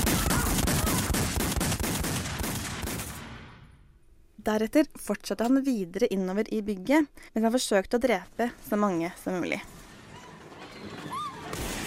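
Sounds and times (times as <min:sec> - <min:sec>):
loud rapid volley of many gunshots: 0:00.0 - 0:03.6
speech: 0:04.4 - 0:09.8.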